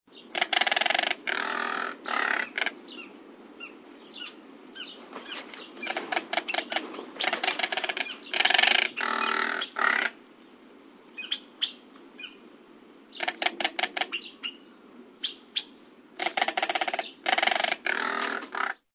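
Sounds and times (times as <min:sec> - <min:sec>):
Crested Caracara calling: 0:00.1 - 0:18.9.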